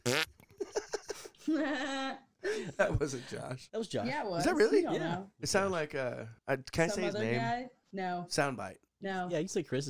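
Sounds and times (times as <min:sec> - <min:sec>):
loud fart: 0:00.0 - 0:00.5
speech: 0:01.5 - 0:09.8.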